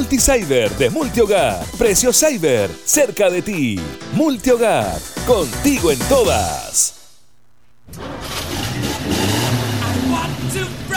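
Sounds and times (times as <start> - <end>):
speech: 0.0 - 7.0
car engine revving: 7.9 - 10.9.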